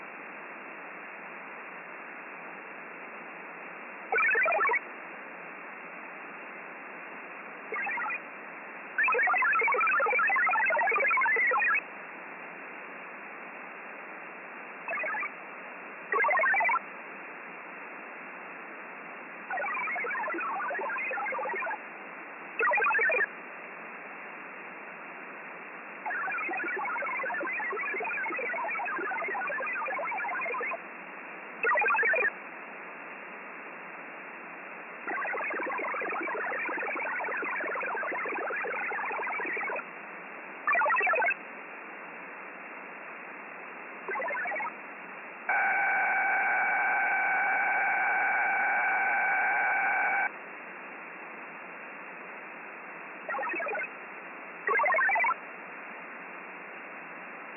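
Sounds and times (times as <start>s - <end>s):
satellite radio data signal: 4.1s - 4.9s, 7.7s - 8.2s, 9.0s - 11.9s, 14.8s - 15.4s, 16.0s - 16.8s, 19.4s - 21.8s, 22.6s - 23.3s, 26.0s - 30.8s, 31.6s - 32.4s, 35.0s - 39.9s, 40.6s - 41.4s, 43.1s - 44.8s, 45.4s - 50.4s, 51.5s - 55.4s.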